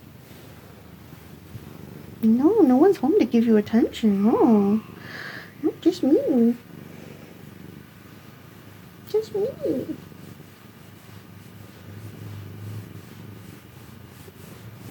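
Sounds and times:
cat purring with a low continuous rumble: 0.0 - 14.8
speech: 2.2 - 6.6, 9.2 - 10.0.

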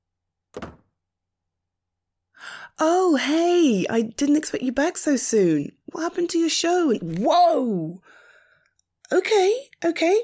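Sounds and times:
heavy door thunking shut: 0.5 - 0.9
speech: 2.8 - 8.2, 9.1 - 10.2.

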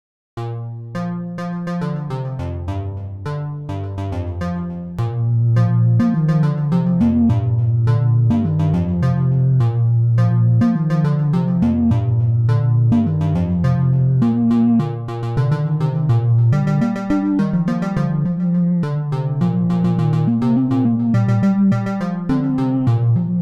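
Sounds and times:
trance cover: 0.5 - 23.3.

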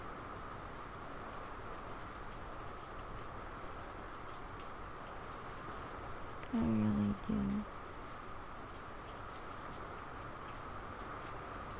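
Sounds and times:
rain falling on surfaces: 0.0 - 11.7
speech: 6.5 - 7.7.

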